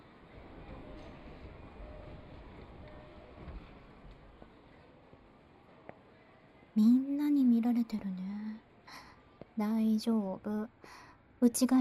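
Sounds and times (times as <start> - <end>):
train arriving at station: 0.0 - 5.9
faint clanks and squeaks: 0.6 - 5.3
speech: 6.8 - 8.3, 9.6 - 11.7.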